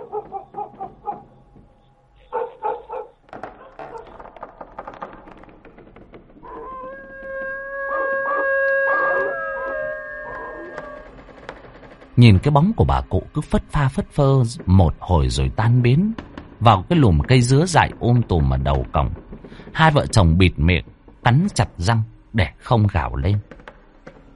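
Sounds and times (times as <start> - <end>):
neighbour's dog barking in short bursts: 0.0 - 1.3, 2.2 - 4.2
neighbour's dog long wavering howl: 0.0 - 1.3, 2.3 - 4.2, 6.4 - 11.2
speech: 12.2 - 19.2, 19.8 - 23.5.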